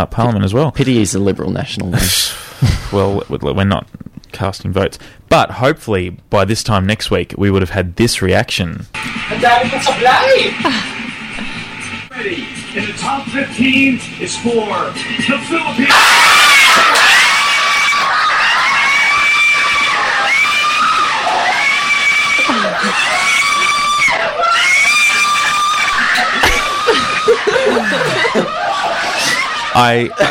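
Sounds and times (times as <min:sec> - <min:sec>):
speech: 0:00.0 - 0:11.5, 0:12.2 - 0:17.0, 0:29.8 - 0:30.2
men screaming excitedly at a beauty pageant result: 0:15.7 - 0:30.2
men's breathless laughter: 0:26.3 - 0:29.5.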